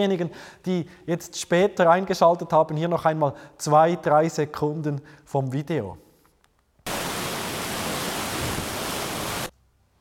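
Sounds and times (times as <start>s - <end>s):
speech: 0.0s - 6.0s
rushing floodwater of the Jordan River: 6.9s - 9.5s.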